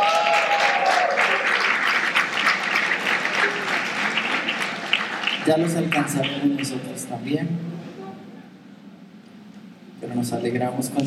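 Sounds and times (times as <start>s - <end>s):
congregation applauding a couple's 25th wedding anniversary during a church sermon: 0.0s - 6.9s
speech: 5.5s - 7.8s, 10.2s - 11.0s.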